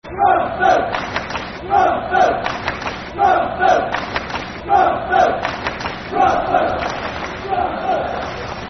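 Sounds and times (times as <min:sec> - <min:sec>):
football crowd chanting: 0:00.1 - 0:08.4
crowd clapping: 0:00.9 - 0:01.6, 0:02.4 - 0:03.1, 0:03.9 - 0:04.6, 0:05.4 - 0:07.4.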